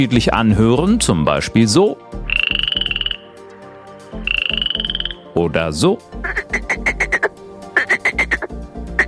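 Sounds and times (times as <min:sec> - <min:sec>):
speech: 0:00.0 - 0:02.2, 0:05.4 - 0:06.7
male frogs croaking at a pond on a summer evening: 0:02.2 - 0:05.4, 0:06.2 - 0:09.0.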